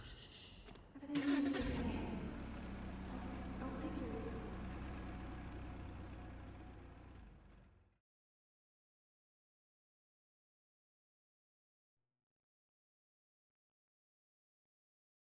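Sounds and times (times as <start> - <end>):
car engine starting and settling into a low rumbling idle: 1.0 - 8.0.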